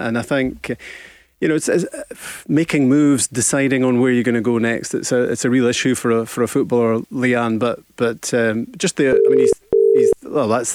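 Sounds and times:
speech: 0.0 - 10.7
telephone ringing tone on an outgoing call during a live radio show: 9.1 - 10.2.

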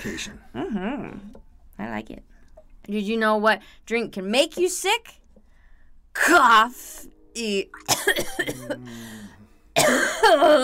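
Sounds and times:
speech: 0.0 - 5.2, 6.2 - 10.6
person sick with the flu coughing: 7.8 - 9.2, 9.8 - 10.6.

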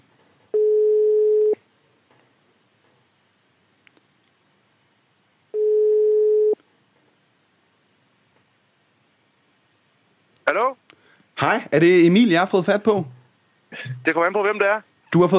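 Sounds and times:
telephone ringback tones of an outgoing call: 0.6 - 1.6, 5.6 - 6.6
faint clicks on a telephone line: 3.8 - 4.4
speech: 10.5 - 15.3.

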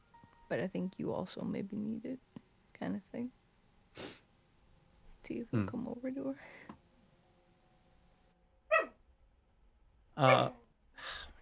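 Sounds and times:
speech: 0.5 - 3.4, 5.3 - 6.8, 10.2 - 11.2
dog barking in its sleep: 8.7 - 9.0, 10.2 - 10.6.

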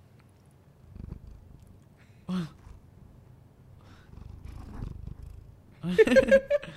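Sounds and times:
cat purring: 0.8 - 5.9.

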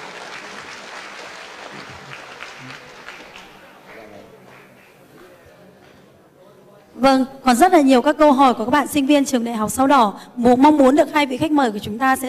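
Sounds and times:
audience applause at a university question-and-answer session: 0.0 - 5.0
speech: 7.0 - 12.2.

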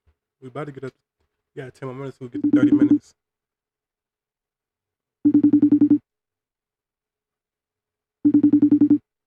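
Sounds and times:
speech: 0.4 - 3.2
phone call ringing unanswered: 2.4 - 3.1, 5.2 - 6.0, 8.2 - 9.0.

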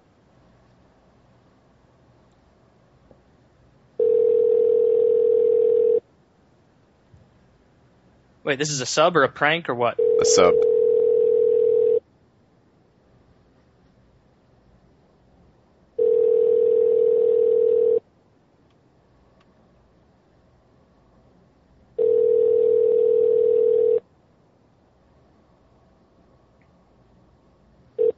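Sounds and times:
telephone ringback tone: 4.0 - 6.0, 10.0 - 12.0, 16.0 - 18.0, 22.0 - 24.0, 28.0 - 28.1
speech: 8.5 - 10.7.

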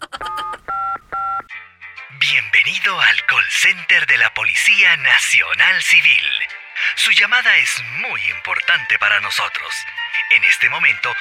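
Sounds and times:
mobile phone keypad tones: 0.2 - 1.5
speech: 2.7 - 11.1.

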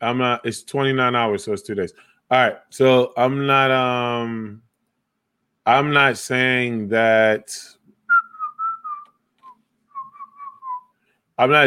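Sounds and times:
speech: 0.0 - 4.6, 5.6 - 7.8, 11.4 - 11.6
whistling from a video game loading screen: 8.1 - 10.9.

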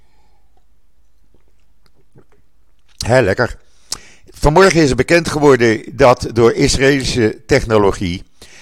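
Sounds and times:
person sipping and swallowing water: 0.3 - 3.0
speech: 3.0 - 3.7, 4.4 - 8.3.

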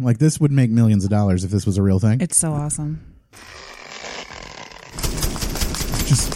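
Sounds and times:
speech: 0.0 - 3.6, 6.1 - 6.3
toy light-shooting assault-rifle style gun firing: 3.6 - 6.3.

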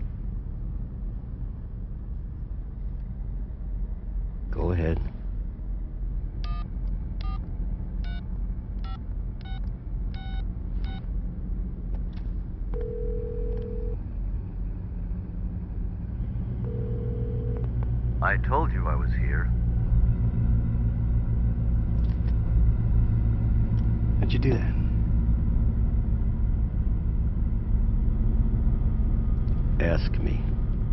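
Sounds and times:
low rumble: 0.0 - 30.9
long steady telephone tones: 12.8 - 14.0, 16.7 - 17.7
speech: 18.4 - 19.6, 24.3 - 24.8, 29.8 - 30.6.

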